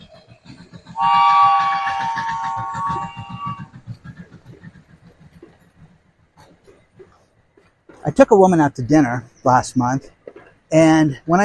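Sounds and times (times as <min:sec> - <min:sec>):
train wheels clattering over rail joints: 0:00.0 - 0:11.4
speech: 0:01.0 - 0:01.4, 0:08.2 - 0:11.4
train horn blaring: 0:01.0 - 0:03.7.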